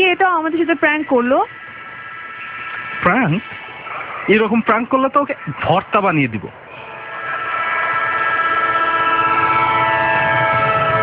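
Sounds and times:
speech: 0.4s - 1.6s, 3.0s - 6.6s
departing train horn: 6.7s - 11.0s
departing train rumbling clatter: 9.5s - 11.0s.

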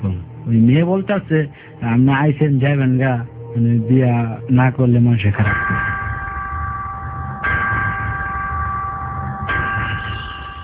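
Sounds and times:
speech: 0.0s - 5.7s
electric bell ringing to mark a break: 3.4s - 10.6s.

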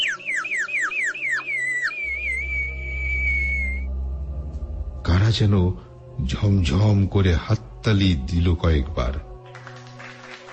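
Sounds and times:
person whistling on empty open ground: 0.0s - 3.9s
speech: 5.3s - 9.3s.

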